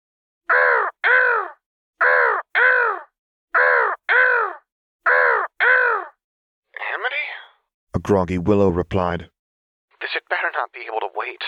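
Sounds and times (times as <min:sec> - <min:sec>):
crow cawing: 0:00.5 - 0:06.2
speech: 0:08.0 - 0:09.3, 0:10.0 - 0:11.4.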